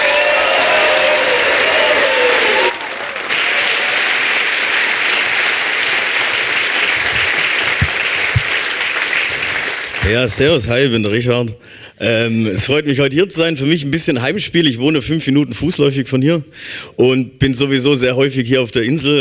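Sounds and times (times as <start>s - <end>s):
whoops and cheers: 0.0s - 4.2s
large audience applause welcoming performer on stage: 0.0s - 10.4s
speech: 10.1s - 19.1s.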